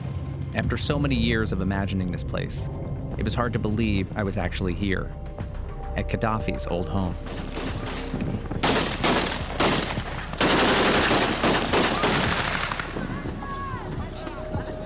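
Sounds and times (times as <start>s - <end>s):
indistinct voices: 0.0s - 14.8s
wind: 0.0s - 14.8s
speech: 0.5s - 8.5s
celebratory gunfire outdoors at a makeshift fairground: 7.2s - 13.5s.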